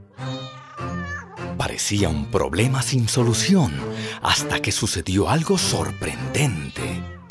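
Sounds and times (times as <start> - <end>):
cat meowing: 0.2 - 1.5
speech: 1.6 - 7.2.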